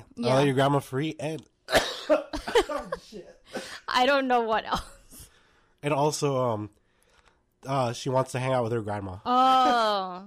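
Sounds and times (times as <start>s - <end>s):
speech: 0.2s - 5.0s, 5.8s - 6.8s, 7.6s - 10.2s
man coughing harshly: 1.7s - 3.9s.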